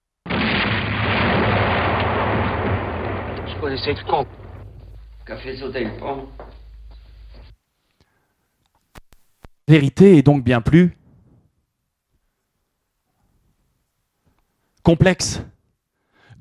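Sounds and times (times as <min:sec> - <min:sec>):
crackling rumbling debris: 0:00.2 - 0:07.6
explosion: 0:00.2 - 0:07.6
speech: 0:03.7 - 0:04.4, 0:05.3 - 0:06.5, 0:09.7 - 0:11.0, 0:14.9 - 0:15.5.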